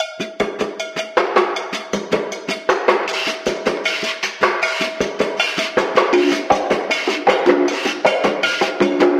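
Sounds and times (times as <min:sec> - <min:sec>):
slow building conga drum loop: 0:00.0 - 0:09.1.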